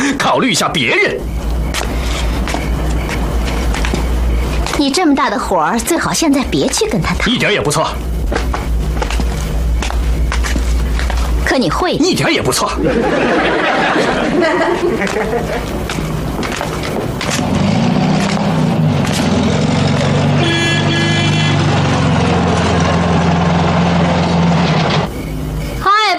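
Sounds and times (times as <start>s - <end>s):
voices chattering: 0.0s - 22.0s
speech: 0.3s - 1.5s, 4.8s - 8.7s, 11.5s - 15.9s
car engine rumbling as it pulls up: 1.2s - 5.0s, 5.7s - 11.5s, 12.9s - 25.8s
laughter: 12.6s - 16.0s
car horn toot: 20.3s - 21.9s.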